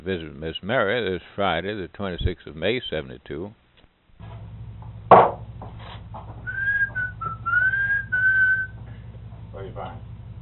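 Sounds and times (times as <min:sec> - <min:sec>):
speech: 0:00.0 - 0:03.6, 0:09.6 - 0:10.1
low steady hum: 0:00.0 - 0:10.3
sharp knock: 0:05.1 - 0:05.5
person whistling answering a bird: 0:06.4 - 0:08.8.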